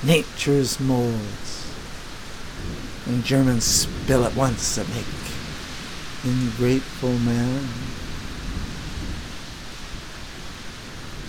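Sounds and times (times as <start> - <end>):
speech: 0.0 - 1.5, 3.0 - 5.2, 6.2 - 8.0
heavy rain: 0.0 - 11.2
rolling thunder: 1.6 - 6.3, 7.7 - 11.2.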